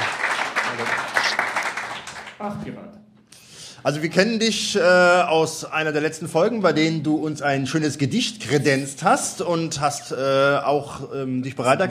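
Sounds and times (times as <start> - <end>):
crowd applauding: 0.0 - 2.4
speech: 0.8 - 1.1, 2.4 - 3.0, 3.8 - 11.8.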